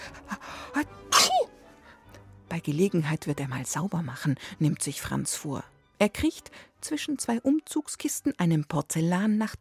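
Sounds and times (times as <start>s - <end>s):
speech: 0.8s - 1.0s, 2.6s - 9.5s
person sneezing from dust: 1.1s - 1.6s.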